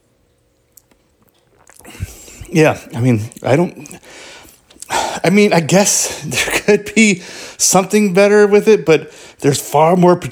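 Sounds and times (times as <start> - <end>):
soft wet mouth clicks while sipping mead: 0.7 - 4.9
slurping pull of mead: 0.9 - 3.4
speech: 2.5 - 4.0, 5.3 - 10.3.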